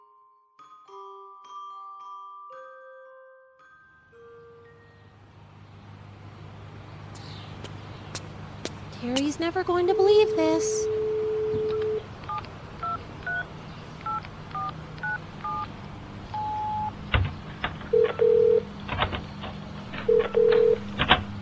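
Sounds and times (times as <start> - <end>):
speech: 9.0 - 11.0
single longer telephone tone: 9.8 - 12.0, 16.4 - 16.9, 17.9 - 18.7, 20.1 - 20.9
telephone ringing tones: 9.8 - 13.5, 14.1 - 15.7, 16.4 - 17.0, 17.9 - 18.7, 20.0 - 21.0
telephone keypad dialing beeps: 10.0 - 15.7, 16.4 - 16.9, 18.0 - 18.6, 20.0 - 20.9.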